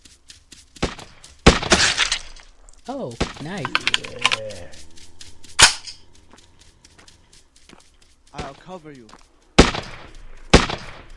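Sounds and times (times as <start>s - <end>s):
quieter zombie video game sounds: 0.0s - 11.1s
speech: 2.9s - 4.9s, 8.4s - 9.3s
gunshot in a zombie video game: 9.6s - 11.1s.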